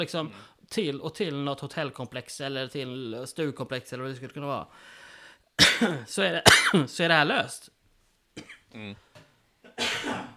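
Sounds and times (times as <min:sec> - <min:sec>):
speech: 0:00.0 - 0:05.0, 0:05.6 - 0:07.8, 0:08.4 - 0:09.0
smoker coughing: 0:05.6 - 0:06.8, 0:08.4 - 0:08.7, 0:09.6 - 0:10.3.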